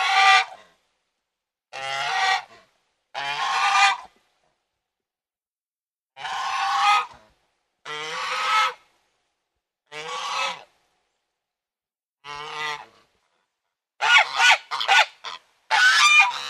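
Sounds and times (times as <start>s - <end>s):
domestic goose honking: 1.7s - 2.5s, 3.2s - 4.1s, 6.2s - 7.2s, 7.9s - 8.8s, 9.9s - 10.7s, 12.2s - 13.0s, 14.0s - 16.4s.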